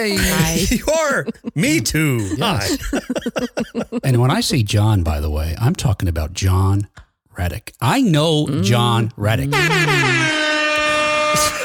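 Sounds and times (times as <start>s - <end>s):
speech: 0.0s - 10.6s, 11.3s - 11.6s
laughter: 0.1s - 4.4s
air horn blast: 9.5s - 11.6s.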